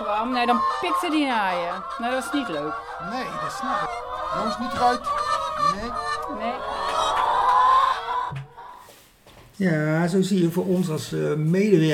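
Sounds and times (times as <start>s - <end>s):
chickens clucking: 0.0s - 9.0s
speech: 0.2s - 6.8s, 9.6s - 11.9s.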